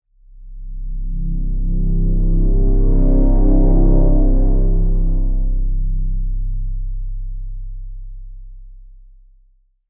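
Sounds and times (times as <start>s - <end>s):
brassy swell: 1.0s - 6.1s.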